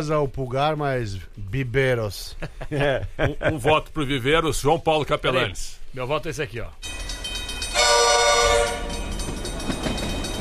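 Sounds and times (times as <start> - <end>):
speech: 0.0 - 7.0
train rolling along the tracks: 0.0 - 10.4
laughter: 2.2 - 4.1
train horn blaring: 7.7 - 9.2.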